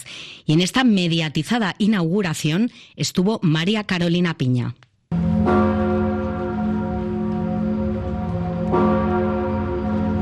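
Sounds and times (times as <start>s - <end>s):
speech: 0.5s - 5.3s
large cathedral bells ringing: 5.1s - 10.2s.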